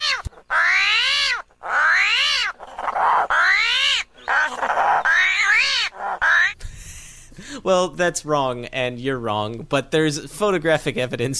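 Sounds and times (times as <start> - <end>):
armadillo squealing: 0.0 - 6.6
speech: 7.7 - 11.3.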